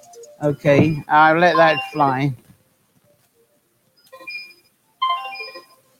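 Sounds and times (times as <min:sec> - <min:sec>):
phone ringtone of melodic electronic tones: 0:00.1 - 0:02.4, 0:04.0 - 0:05.9
speech: 0:00.4 - 0:02.4.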